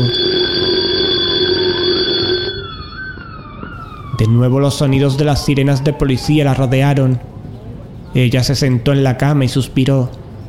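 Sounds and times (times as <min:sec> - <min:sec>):
alarm clock ringing: 0:00.0 - 0:03.6
speech: 0:04.2 - 0:07.3, 0:08.1 - 0:10.2.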